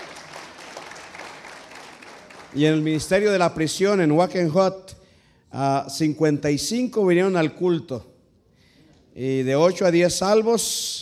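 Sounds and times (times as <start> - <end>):
congregation applauding: 0.0 - 3.6
speech: 2.5 - 8.1, 9.2 - 11.0.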